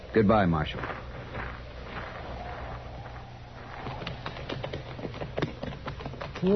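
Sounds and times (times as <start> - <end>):
speech: 0.1 - 1.1
horse hooves clip-clopping as riders leave on horseback: 0.8 - 6.5.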